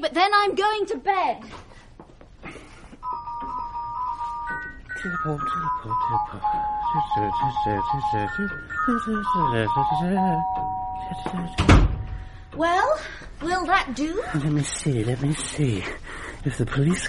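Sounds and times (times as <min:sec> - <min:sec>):
speech: 0:00.0 - 0:01.7, 0:05.0 - 0:11.9, 0:12.5 - 0:17.0
doorbell playing a long clear melodic chime: 0:03.0 - 0:12.4.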